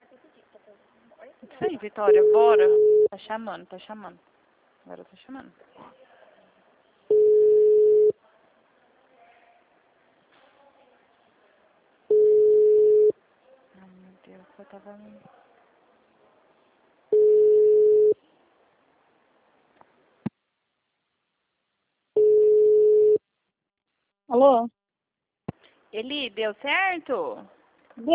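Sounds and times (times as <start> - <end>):
speech: 1.6 - 6.0, 14.3 - 15.4, 24.4 - 24.8, 25.9 - 28.1
telephone line tone beeps after a dropped call: 2.1 - 3.1, 7.1 - 8.2, 12.1 - 13.1, 17.1 - 18.2, 22.2 - 23.2.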